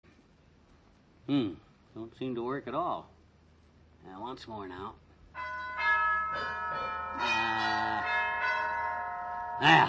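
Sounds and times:
speech: 1.3s - 3.2s, 4.0s - 5.5s, 9.6s - 9.8s
wall-mounted gong box chiming metallic bell tones: 5.4s - 9.8s.

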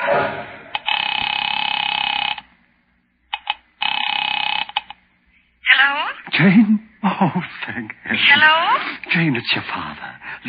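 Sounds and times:
electric telephone bell ringing on a call being placed: 0.8s - 2.5s, 3.4s - 5.0s
speech: 6.4s - 10.4s.

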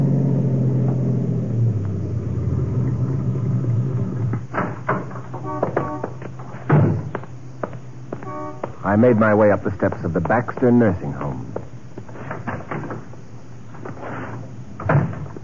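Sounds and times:
car engine rumble while driving: 0.0s - 15.4s
knocks and thumps: 4.2s - 8.8s, 9.7s - 15.4s
speech: 9.0s - 11.6s.

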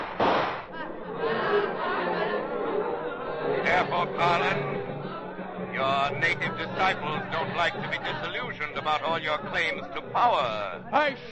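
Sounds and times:
gunshot from a man's gun: 0.0s - 0.7s
excited crowd voices murmuring: 0.7s - 11.3s
laughter: 0.7s - 11.3s
speech: 3.9s - 4.9s, 5.8s - 11.3s.

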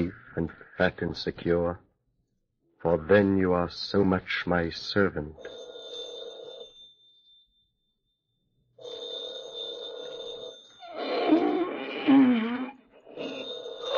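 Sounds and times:
speech: 0.0s - 1.9s, 2.8s - 5.6s
old-fashioned telephone bell ringing: 5.4s - 7.8s, 8.7s - 12.0s, 13.0s - 13.9s
person moaning: 10.9s - 13.9s.

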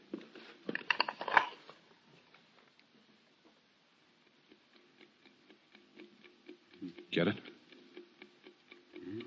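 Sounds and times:
watch ticking inside a parcel heard through a stethoscope: 4.0s - 9.2s
speech: 7.1s - 7.5s.

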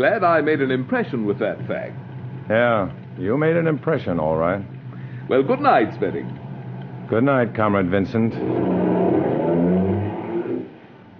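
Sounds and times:
speech: 0.0s - 6.4s, 7.1s - 9.4s
car engine humming and revving as the car pulls away at night: 5.0s - 11.0s.

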